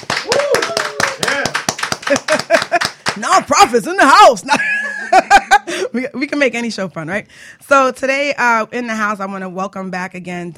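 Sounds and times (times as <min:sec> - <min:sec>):
small studio audience clapping: 0:00.0 - 0:03.6
studio audience whooping and cheering: 0:00.1 - 0:02.4
laughter: 0:01.2 - 0:03.0, 0:04.4 - 0:05.8
speech: 0:03.2 - 0:10.5.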